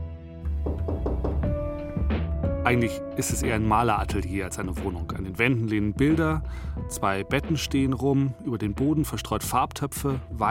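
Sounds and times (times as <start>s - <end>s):
firm knocks on the wooden door of an attic apartment: 0.5s - 1.8s
speech: 2.6s - 10.4s.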